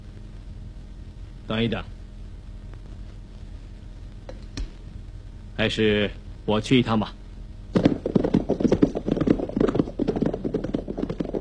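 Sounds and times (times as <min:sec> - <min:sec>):
speech: 0:01.5 - 0:02.0, 0:05.6 - 0:07.2
horse hooves clip-clopping as riders travel on horseback: 0:07.8 - 0:11.3.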